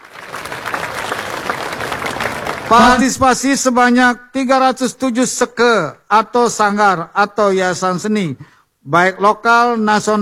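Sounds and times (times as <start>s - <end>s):
audience applauding the artists at a Balinese arts festival: 0.0s - 3.4s
speech: 2.7s - 10.2s.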